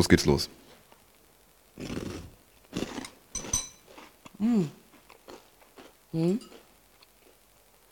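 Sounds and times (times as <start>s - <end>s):
chewing crunchy brown and white cereal balls: 1.8s - 7.8s
short pitched hums from the person eating: 4.4s - 4.8s, 6.2s - 6.5s.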